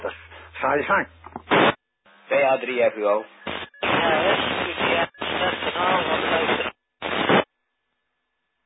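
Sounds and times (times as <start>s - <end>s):
hissing static of a weak radio station: 0.0s - 7.5s
speech: 0.6s - 1.2s, 2.3s - 3.4s, 4.0s - 6.7s
faint voice of a radio transmission: 3.8s - 6.7s.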